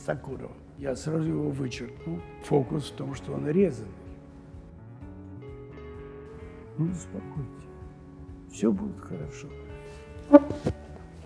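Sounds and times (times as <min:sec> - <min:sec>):
speech: 0:00.0 - 0:04.0, 0:06.8 - 0:07.7, 0:08.5 - 0:09.6, 0:10.3 - 0:10.8
wooden table creaking: 0:10.3 - 0:10.8.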